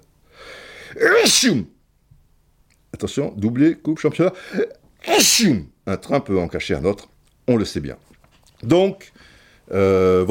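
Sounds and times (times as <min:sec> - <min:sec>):
person sneezing: 0:00.8 - 0:01.7, 0:05.0 - 0:05.7
speech: 0:01.0 - 0:01.8, 0:03.0 - 0:10.2.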